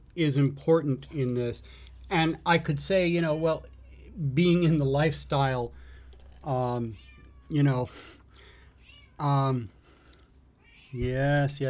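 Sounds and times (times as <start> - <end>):
quieter speech: 0.2 - 3.6, 4.2 - 5.7, 6.5 - 6.9, 7.5 - 7.9, 9.2 - 9.7, 11.0 - 11.6
cat meowing: 6.6 - 7.6, 8.8 - 9.7, 10.6 - 11.3.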